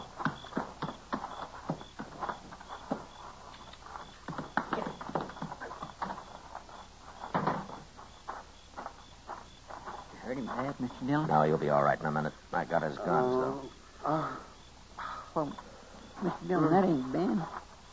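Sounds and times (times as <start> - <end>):
horse hooves clip-clopping on a hard floor among stalls: 0.0 - 10.7
speech: 10.6 - 14.5, 15.4 - 15.6, 16.2 - 17.6.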